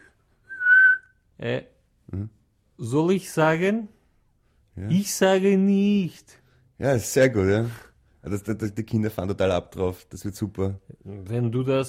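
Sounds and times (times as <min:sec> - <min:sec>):
person whistling a single steady high note: 0:00.0 - 0:01.2
speech: 0:01.4 - 0:04.0, 0:04.8 - 0:11.8.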